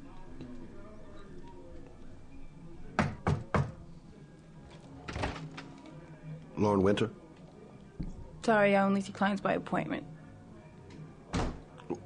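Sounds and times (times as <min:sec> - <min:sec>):
faint speech murmuring: 0:00.0 - 0:12.0
knocking on a wooden door: 0:03.0 - 0:03.8
speech: 0:06.6 - 0:07.2, 0:08.5 - 0:10.1.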